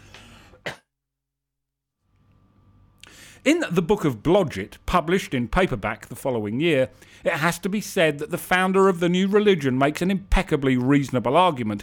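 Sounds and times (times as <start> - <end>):
person clearing throat: 0.5 - 0.9
faint room noise: 2.0 - 11.8
speech: 3.4 - 11.8.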